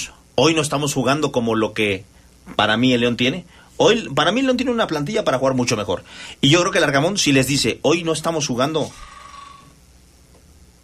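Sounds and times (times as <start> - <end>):
low hum of noise: 0.0 - 10.8
speech: 0.4 - 9.1
cell phone ringing with a single steady electronic tone: 8.9 - 9.8.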